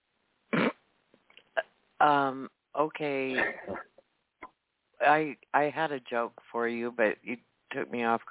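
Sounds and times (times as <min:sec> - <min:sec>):
loud fart sound effects: 0:00.5 - 0:00.8
speech: 0:02.0 - 0:03.9, 0:05.0 - 0:08.2.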